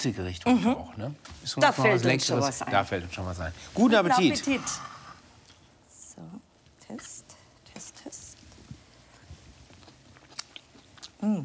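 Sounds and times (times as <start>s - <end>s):
speech: 0.0s - 4.9s, 11.2s - 11.4s
faint crunchy chewing of Swiss chard: 9.7s - 11.4s.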